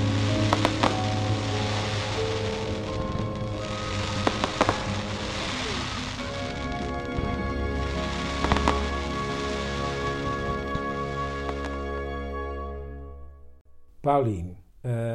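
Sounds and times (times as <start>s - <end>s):
fireworks crackling and hissing: 0.0s - 11.8s
speech: 14.1s - 15.1s.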